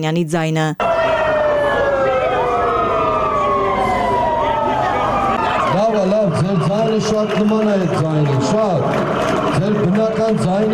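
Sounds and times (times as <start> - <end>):
speech: 0.0 - 1.0, 6.5 - 10.7
police car sirens wailing outside a government building during a protest: 0.4 - 7.5.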